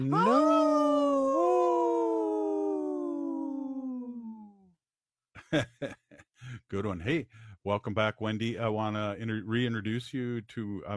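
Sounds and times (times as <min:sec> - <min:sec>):
speech: 0:00.0 - 0:00.6, 0:05.5 - 0:10.9
wolf howling: 0:00.0 - 0:04.3.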